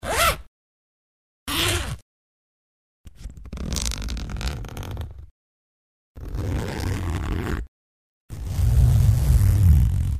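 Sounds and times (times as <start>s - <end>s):
zipper: 0.0s - 0.5s, 1.5s - 2.0s, 3.1s - 5.3s, 6.2s - 7.7s, 8.3s - 10.1s.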